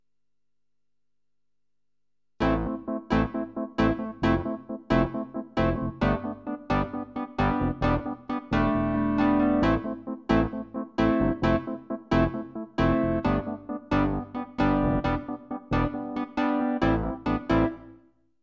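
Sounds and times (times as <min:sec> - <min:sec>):
stereo Wurly electric piano: 0:02.4 - 0:18.0.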